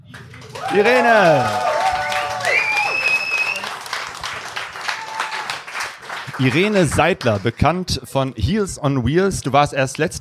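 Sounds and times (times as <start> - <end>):
audience applause: 0.0 - 7.8
audience cheers and whoops: 0.4 - 3.9, 4.8 - 5.8
speech: 0.7 - 1.7, 6.4 - 10.1.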